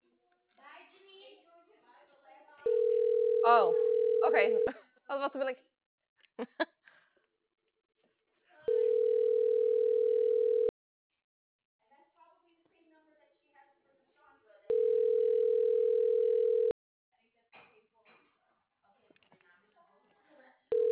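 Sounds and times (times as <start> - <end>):
phone ringback tone purring: 2.7 - 4.7, 8.7 - 10.7, 14.7 - 16.8, 20.7 - 20.9
speech: 3.4 - 5.7, 6.4 - 6.8.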